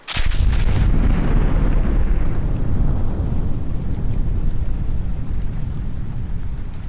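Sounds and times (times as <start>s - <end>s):
sharp loud mine blast: 0.0s - 2.6s
heavy continuous low rumble of mine explosions: 0.0s - 6.8s.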